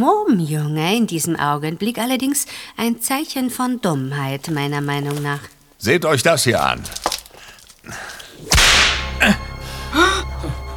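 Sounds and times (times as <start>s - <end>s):
speech: 0.0s - 7.0s, 7.8s - 8.0s, 9.2s - 9.4s
whip cracking: 8.4s - 9.3s.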